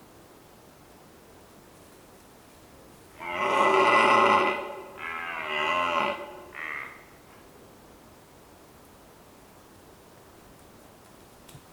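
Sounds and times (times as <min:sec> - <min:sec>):
red deer Cervus elaphus roaring on Volovec hill in Slovakia: 0:03.2 - 0:07.1.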